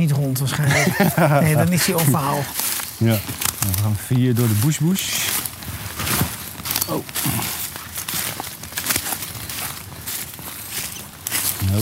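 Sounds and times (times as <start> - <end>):
speech: 0.0 - 5.4, 6.9 - 7.6
laughter: 0.5 - 2.5
crunching rustling footsteps through dense forest undergrowth: 0.7 - 11.8
twigs and leaves snapping underfoot: 2.5 - 11.8.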